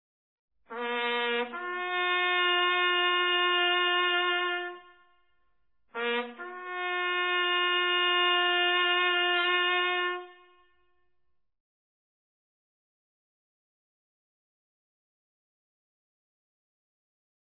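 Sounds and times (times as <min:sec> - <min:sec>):
bugle call: 0:00.7 - 0:05.1, 0:06.0 - 0:10.8.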